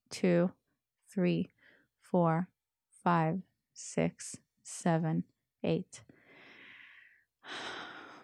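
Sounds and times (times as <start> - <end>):
speech: 0.1 - 6.1
breathing in through the mouth and exhaling during a breathing exercise: 1.5 - 2.0, 6.1 - 8.2.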